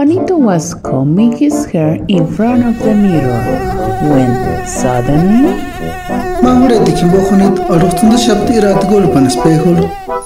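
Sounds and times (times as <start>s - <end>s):
speech: 0.0s - 10.0s
mosquito buzzing with wavering whining pitch: 2.1s - 10.2s.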